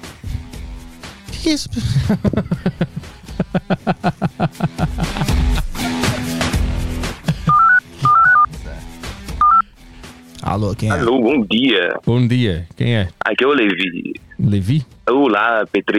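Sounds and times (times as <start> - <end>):
speech: 1.4 - 5.3, 10.6 - 15.9
laughter: 1.5 - 8.4
dual-tone telephone beeps for a phone call: 7.5 - 8.5, 9.4 - 9.6.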